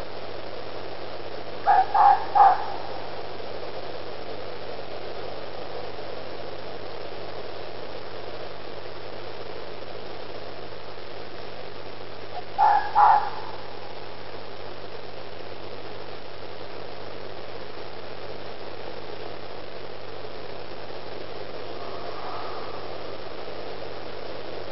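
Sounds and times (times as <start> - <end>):
low hum and hiss: 0.0 - 24.7
fox yelping: 1.6 - 3.3, 12.4 - 13.9.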